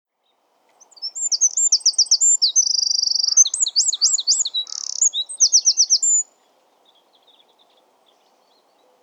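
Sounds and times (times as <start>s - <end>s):
Eurasian wren Troglodytes troglodytes song: 0.2s - 8.9s.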